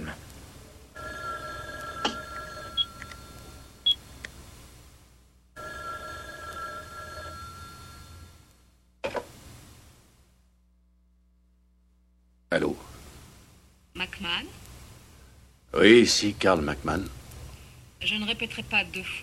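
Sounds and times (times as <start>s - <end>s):
telephone ringing: 1.0s - 3.9s, 5.6s - 8.5s
speech: 12.5s - 12.9s, 14.0s - 14.6s, 15.7s - 17.2s, 18.0s - 19.2s.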